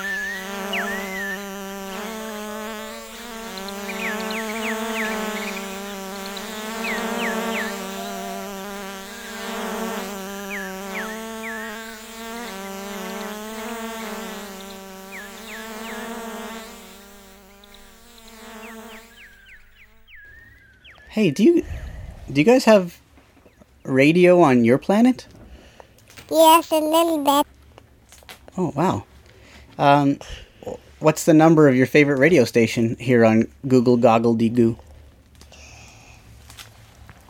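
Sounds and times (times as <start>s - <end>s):
swarm of bees buzzing: 0.0s - 18.8s
speech: 21.2s - 21.7s, 22.3s - 23.0s, 23.9s - 25.3s, 26.3s - 27.4s, 28.6s - 29.1s, 29.8s - 30.4s, 31.0s - 34.8s.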